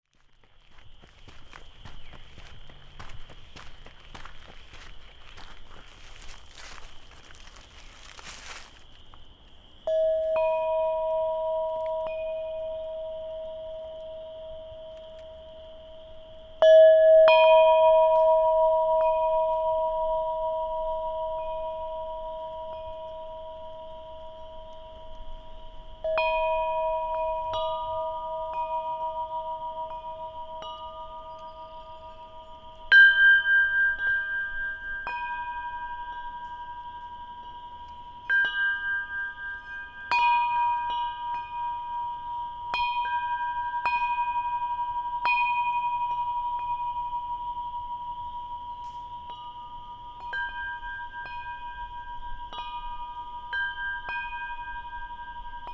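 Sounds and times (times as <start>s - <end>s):
wind chimes chiming in Wisconsin: 1.3s - 9.0s, 9.8s - 55.7s.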